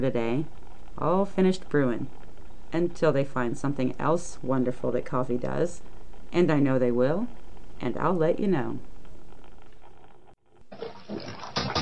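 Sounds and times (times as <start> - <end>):
speech: 0.0 - 8.9
water splashing and sloshing in a bathtub as someone bathes: 10.6 - 11.8.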